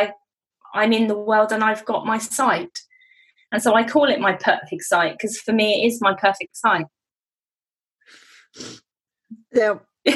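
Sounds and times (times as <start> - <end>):
speech: 0.0 - 2.9, 3.5 - 7.0, 8.1 - 8.8, 9.5 - 10.1
person sneezing forcefully: 8.2 - 8.9.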